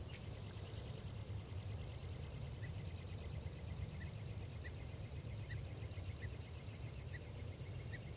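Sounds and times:
constant low hiss and rumble: 0.0 - 8.1
male songbird singing in a tree: 0.0 - 8.1.

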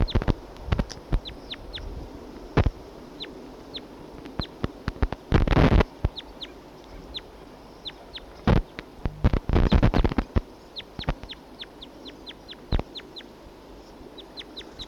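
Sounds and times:
wild birds chirping: 0.0 - 14.8
wild birds clucking harshly: 2.6 - 13.4, 14.2 - 14.8.

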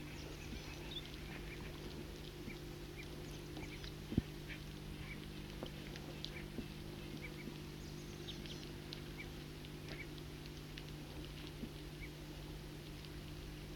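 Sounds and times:
foraging flock of birds calling softly: 0.0 - 10.2, 11.9 - 12.2
steady low hum: 0.0 - 13.7.

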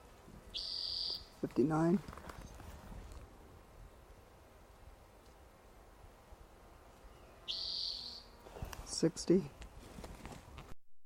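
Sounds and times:
faint noise: 0.0 - 10.8
bird call: 0.5 - 1.3, 7.1 - 8.3
speech: 1.4 - 2.2, 9.0 - 9.6.

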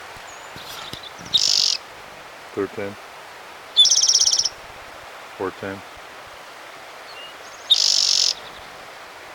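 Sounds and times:
bird chirps: 0.2 - 1.8, 3.8 - 4.5, 7.1 - 8.7
single bird singing a high trilled phrase: 0.3 - 1.9, 3.8 - 4.6, 7.7 - 8.6
speech: 2.5 - 3.1, 5.4 - 5.9.

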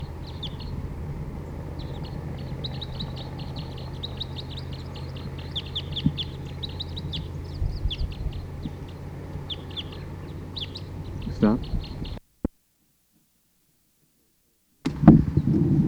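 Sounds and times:
low rumble: 0.0 - 12.2
wild bird calling in high chirps: 0.0 - 12.2, 14.9 - 15.8.

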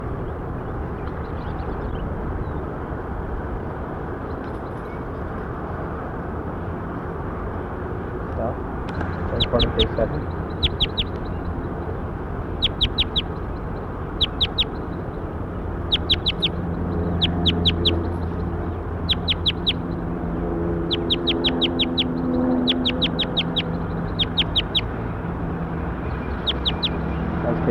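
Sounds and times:
steady low rumble: 0.0 - 27.6
high sharp bird chirps: 9.0 - 11.7, 12.5 - 15.0, 15.8 - 20.0, 20.8 - 24.9, 26.0 - 27.2
speech: 9.8 - 10.4.

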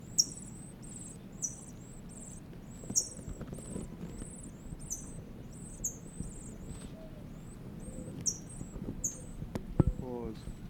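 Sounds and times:
bird chicks peeping inside a nest: 0.0 - 10.6.

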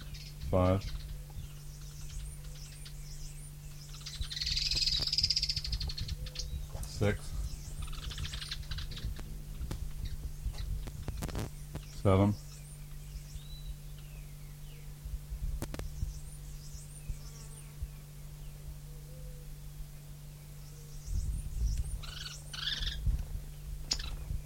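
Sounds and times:
birds calling with faint high chirps: 0.0 - 24.4
steady low hum: 0.0 - 24.4
speech: 0.5 - 1.0, 7.0 - 7.3, 12.0 - 12.4.

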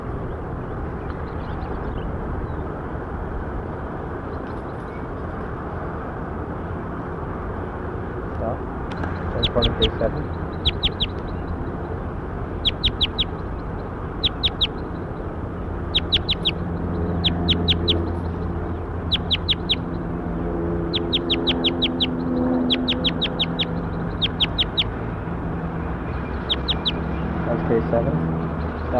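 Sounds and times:
steady low rumble: 0.0 - 28.9
bird chirping: 8.9 - 20.1, 20.8 - 25.0, 25.8 - 27.7
speech: 9.8 - 10.4.

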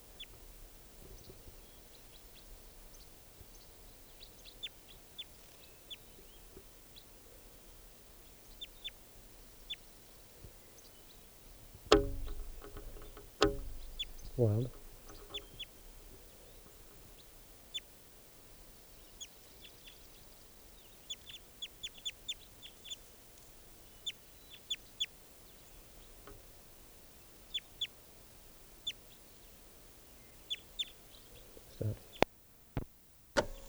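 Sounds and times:
steady outdoor hiss: 0.0 - 33.6
knocks and clatter: 11.9 - 15.6
bird calling: 11.9 - 16.6
speech: 14.4 - 14.8.

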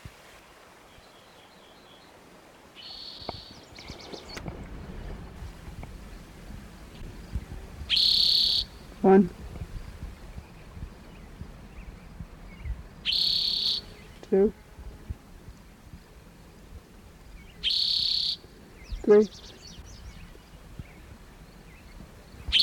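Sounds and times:
faint hiss: 0.0 - 22.6
spotted toad calling trills: 2.8 - 4.0, 7.8 - 9.8, 13.0 - 14.4, 17.4 - 19.8, 22.4 - 22.6.

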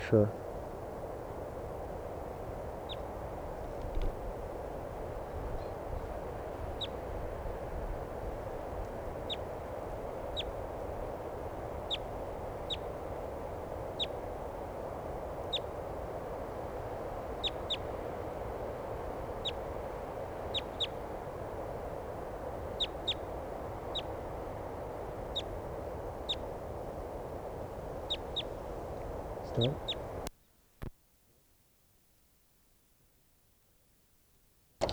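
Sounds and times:
steady hiss: 0.0 - 31.0
speech: 0.1 - 0.4, 29.6 - 29.9
wild bird calling with short sharp high chirps: 9.2 - 15.9, 17.2 - 18.0, 20.4 - 21.2, 22.4 - 30.3.

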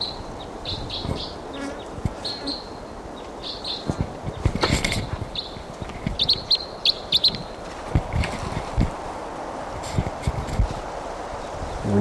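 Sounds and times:
bird chirping in short bright bursts: 0.0 - 7.5
rustles: 0.0 - 11.9.

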